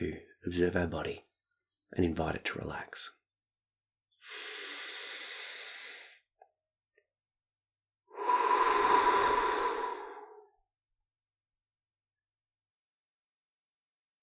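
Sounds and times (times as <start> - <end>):
speech: 0.0 - 1.3, 1.9 - 3.2
slow deep breath in through the nose and out through the mouth: 4.2 - 6.2, 8.1 - 10.6.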